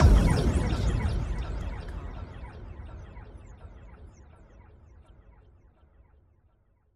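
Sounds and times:
sci-fi impacts: 0:00.0 - 0:04.6.

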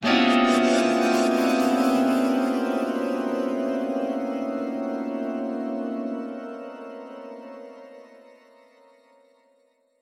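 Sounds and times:
horror haunting piano hit: 0:00.0 - 0:07.1.

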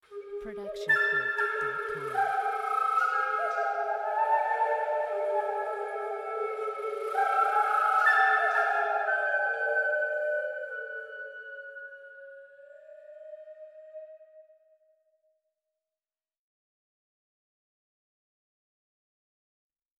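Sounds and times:
haunting flute: 0:00.0 - 0:14.9.

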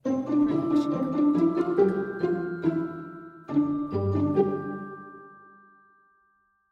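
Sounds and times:
friendly ident with bells: 0:00.0 - 0:06.7.

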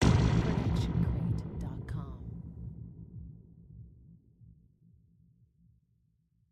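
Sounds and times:
designed sci-fi hit: 0:00.0 - 0:03.2.

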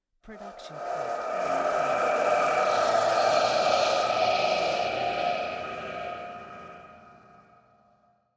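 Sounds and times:
wind swelling: 0:00.3 - 0:08.1.

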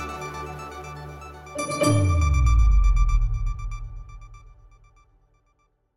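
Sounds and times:
news network logo ident jingle: 0:01.6 - 0:05.0.

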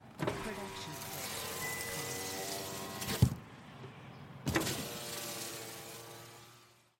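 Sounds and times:
car windows rolling up: 0:00.1 - 0:03.4, 0:04.5 - 0:06.0.

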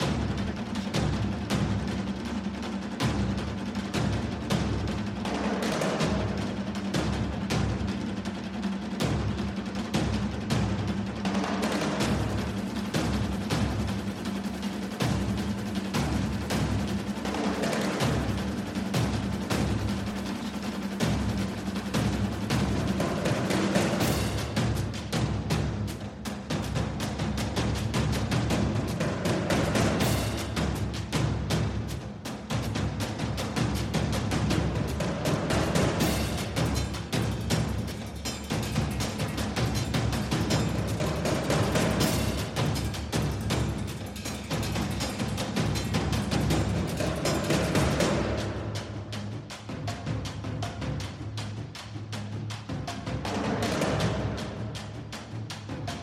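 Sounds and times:
war drum beat: 0:00.0 - 0:56.0.

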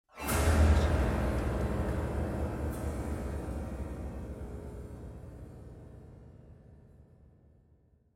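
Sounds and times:
piano hit: 0:00.2 - 0:05.4
rumble: 0:00.2 - 0:07.2.

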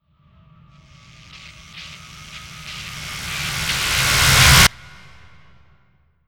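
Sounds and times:
sci-fi teleport effect: 0:00.9 - 0:05.8.

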